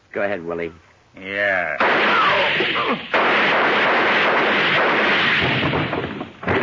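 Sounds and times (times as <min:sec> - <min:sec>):
speech: 0:00.1 - 0:03.8
gunshots from a gun pressed up close to muffle it: 0:01.8 - 0:06.5.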